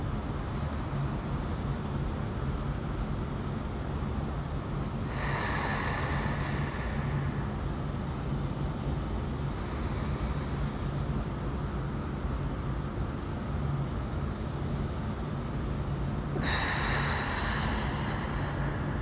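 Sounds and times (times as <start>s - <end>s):
low outdoor rumble of wind or surf: 0.0s - 19.0s
slow deep breaths during meditation: 5.0s - 7.6s, 9.5s - 11.0s, 16.4s - 19.0s.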